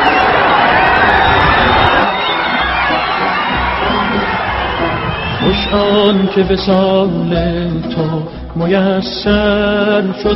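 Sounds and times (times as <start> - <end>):
huge crowd shouting and cheering as car arrives: 0.0 - 7.1
speech: 6.1 - 10.3.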